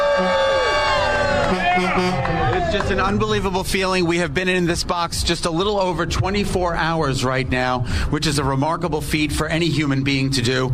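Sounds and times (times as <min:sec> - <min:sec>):
loud dense crowd roar with overlapping shouts and voices: 0:00.0 - 0:03.6
speech: 0:02.8 - 0:10.7.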